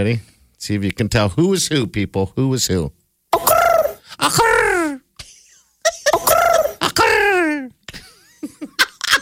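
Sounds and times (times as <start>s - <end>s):
speech: 0.0s - 3.0s, 4.1s - 4.6s
two people imitating bird calls: 3.4s - 4.5s, 6.1s - 7.0s.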